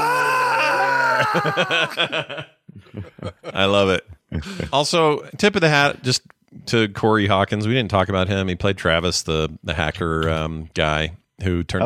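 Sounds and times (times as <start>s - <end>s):
voice imitating a screaming goat: 0.0s - 1.7s
laughter: 0.6s - 4.8s
speech: 1.3s - 2.6s, 3.2s - 11.8s.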